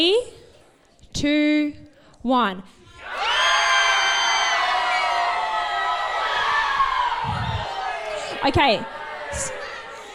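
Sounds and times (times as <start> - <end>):
speech: 1.2 - 3.2, 8.4 - 9.6
large standing audience screaming in triumph: 3.0 - 10.1.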